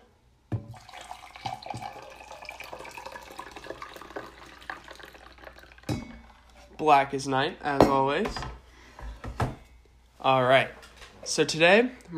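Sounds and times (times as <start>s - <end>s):
coffee pouring from a pot into a cup: 0.7s - 6.8s
speech: 6.8s - 8.5s, 10.2s - 12.1s.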